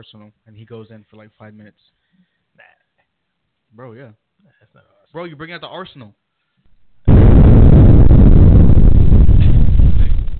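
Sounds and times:
speech: 0.0 - 2.8, 3.7 - 6.2
bomb explosion: 6.8 - 10.3
loud sustained roaring rumble of a bomb explosion: 7.1 - 10.3.

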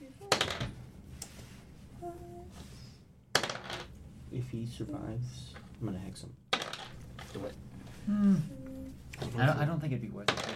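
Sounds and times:
many dice clattering across a table during a tabletop role-playing game: 0.3 - 0.7, 3.4 - 3.9, 6.6 - 7.4, 10.3 - 10.5
speech: 4.4 - 6.4, 7.3 - 8.6, 9.2 - 10.5.

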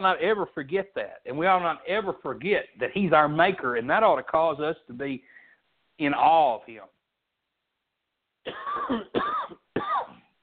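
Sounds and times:
speech: 0.0 - 5.4, 6.0 - 7.0, 8.4 - 10.0
person coughing: 8.5 - 10.3.

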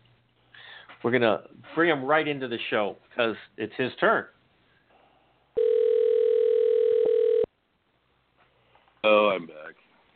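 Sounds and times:
speech: 1.0 - 4.4, 9.0 - 9.8
telephone dial tone: 5.6 - 7.5.

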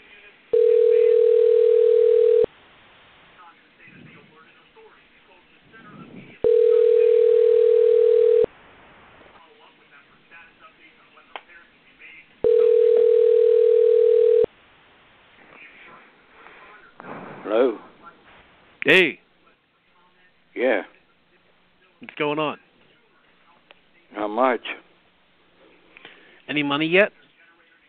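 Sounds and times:
faint noises: 0.0 - 27.8
telephone ringback tone while a call is being placed: 0.5 - 2.5, 6.4 - 8.5, 12.4 - 14.5
speech: 18.9 - 19.2, 26.8 - 27.1.

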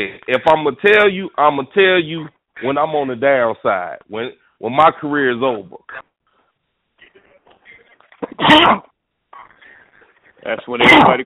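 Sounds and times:
speech: 0.0 - 6.1, 8.2 - 8.9, 10.4 - 11.2
loud sharp sneeze: 8.2 - 8.9, 10.8 - 11.2.

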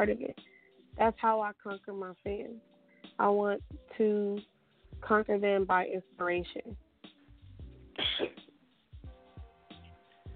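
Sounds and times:
speech: 0.0 - 6.8, 8.0 - 8.4
person sneezing: 8.0 - 8.4.

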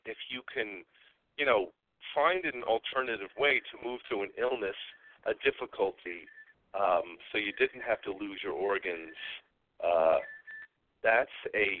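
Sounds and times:
speech: 0.1 - 10.4, 11.0 - 11.7
phone beep signalling another line ringing during a call: 10.0 - 10.7.

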